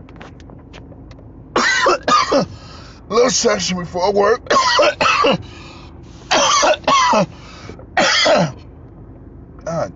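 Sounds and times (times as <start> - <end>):
person coughing harshly: 1.6 - 2.6, 4.5 - 5.5, 6.3 - 7.3, 8.0 - 8.6
speech: 2.0 - 5.5, 7.1 - 7.4, 8.2 - 8.6.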